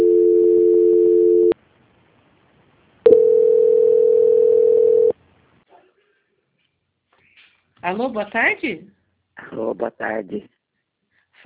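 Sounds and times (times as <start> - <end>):
telephone call transfer tone: 0.0 - 1.6, 3.0 - 5.1
speech: 7.9 - 10.5.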